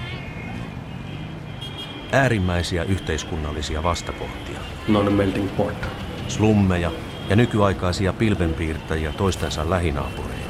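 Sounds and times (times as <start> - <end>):
city traffic roar in Mumbai India: 0.0 - 10.4
speech: 2.1 - 10.4
voices: 2.2 - 10.4.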